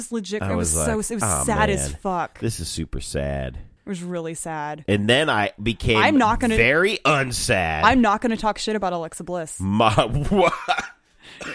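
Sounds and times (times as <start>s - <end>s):
speech: 0.0s - 11.5s
person coughing: 10.4s - 11.5s.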